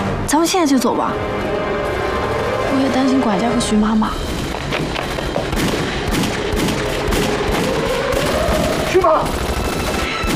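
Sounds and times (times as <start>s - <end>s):
speech: 0.3s - 1.9s, 2.7s - 5.0s, 8.9s - 9.4s
continuous gunfire with rapid bursts and sharp cracks: 5.4s - 10.3s.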